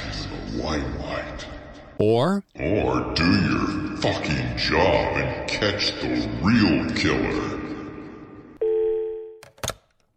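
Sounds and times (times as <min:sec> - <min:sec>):
speech: 0:00.6 - 0:07.7
cell phone ringing: 0:02.0 - 0:02.4.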